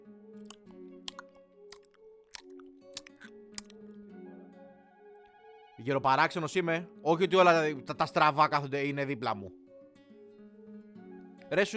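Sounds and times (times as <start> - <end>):
sharp wet clicks and smacks: 0.4 - 3.8
voice imitating a man in a cinema sucking teeth to free stuck popcorn: 0.5 - 3.8
speech: 5.8 - 9.6, 11.5 - 11.7.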